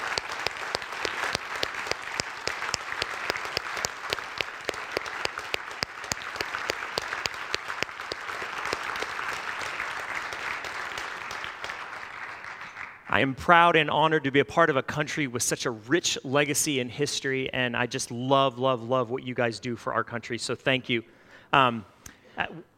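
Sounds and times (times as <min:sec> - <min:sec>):
large audience applause: 0:00.0 - 0:13.1
speech: 0:13.2 - 0:22.7.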